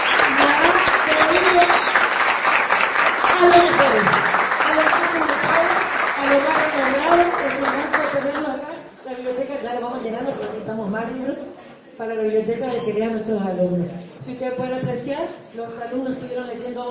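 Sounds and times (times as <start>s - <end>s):
audience applause at a school event honoring a coordinator: 0.0s - 8.5s
speech: 10.2s - 16.8s.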